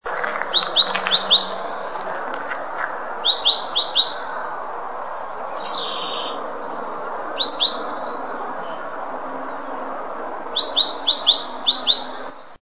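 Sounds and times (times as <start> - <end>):
tacuarita azul calling: 0.1 - 4.5, 5.4 - 9.7, 10.5 - 12.5.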